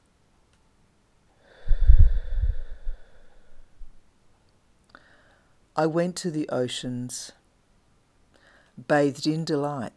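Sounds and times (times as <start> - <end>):
slow gentle breath drawn close to the microphone: 1.4 - 4.0, 4.9 - 5.6, 8.3 - 8.8
speech: 5.8 - 7.4, 8.8 - 9.9.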